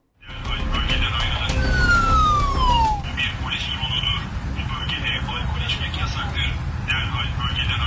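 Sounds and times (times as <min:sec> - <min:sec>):
loudspeaker-like announcement speech from a police drone: 0:00.2 - 0:07.8
police drone warning siren wailing: 0:00.7 - 0:03.5.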